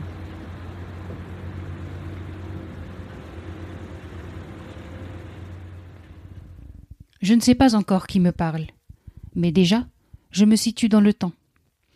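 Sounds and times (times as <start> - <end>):
boat engine droning in a seaside harbor: 0.0 - 6.9
speech: 7.2 - 8.8, 9.4 - 11.4.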